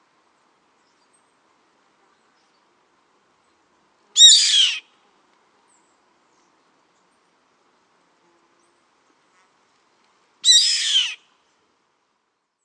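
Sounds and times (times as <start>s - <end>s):
Yellow-headed Caracara Milvago chimachima rasping screeches: 4.2s - 4.8s, 10.4s - 11.2s.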